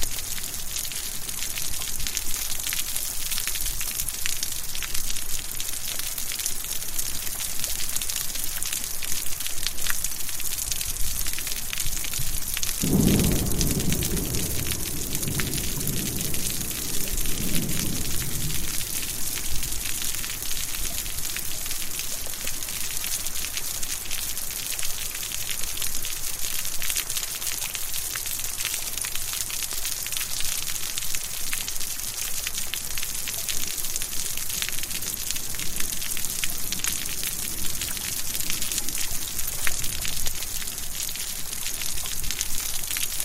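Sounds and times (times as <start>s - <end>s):
steady rain pattering on a porch: 0.0s - 43.2s
thunder rumbling: 12.8s - 20.4s.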